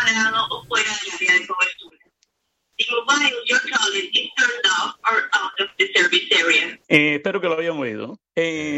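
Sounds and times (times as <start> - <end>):
recorded automated phone message for an out-of-service mobile in Cuba: 0.0 - 2.0, 2.8 - 6.8
speech: 6.9 - 8.7.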